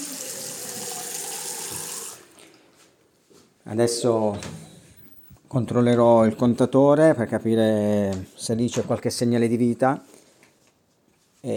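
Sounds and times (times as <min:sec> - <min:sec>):
water running from a tap: 0:00.0 - 0:02.3
speech: 0:03.7 - 0:04.6, 0:05.5 - 0:10.1.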